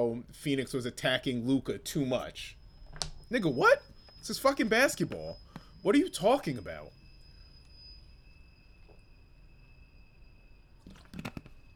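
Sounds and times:
speech: 0.0 - 2.6, 3.3 - 7.0
room hum: 0.0 - 11.7
person sipping and swallowing water: 10.8 - 11.5.

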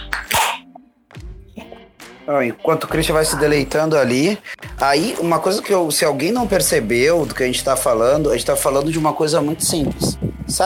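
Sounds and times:
person noisily sipping beer: 0.0 - 0.6
speech: 2.3 - 10.6.

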